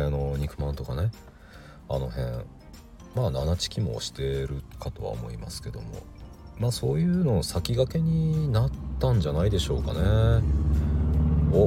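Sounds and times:
speech: 0.0 - 10.9
truck engine driving past in a parking lot: 8.1 - 11.6.

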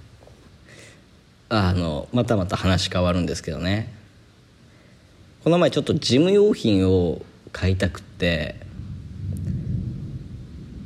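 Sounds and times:
speech: 1.5 - 4.0, 5.4 - 8.6
thunder rumbling: 8.2 - 10.8.

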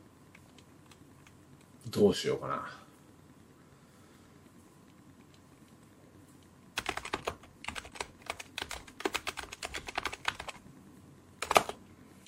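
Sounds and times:
speech: 1.9 - 2.8
computer keyboard typing: 6.8 - 10.6, 11.4 - 11.8.

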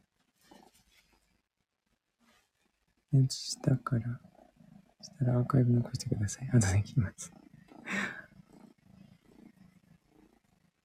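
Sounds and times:
small young cat purring: 0.0 - 10.8
speech: 3.1 - 4.3, 5.1 - 7.4
loud breathy rush: 7.8 - 8.3.

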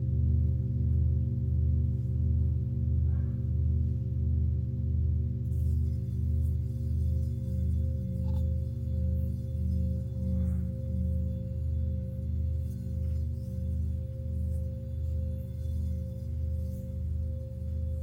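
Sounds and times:
Tibetan singing bowl humming: 0.1 - 18.0.

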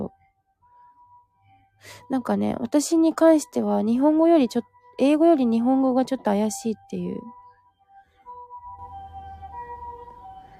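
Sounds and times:
speech: 1.8 - 7.4
ambulance siren wailing as it passes: 1.8 - 10.5.

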